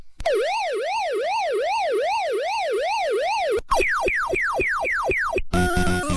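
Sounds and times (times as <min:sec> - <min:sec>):
warbling siren from an arcade video game: 0:00.3 - 0:05.6
quick falling bleeps from an arcade video game: 0:03.7 - 0:05.6.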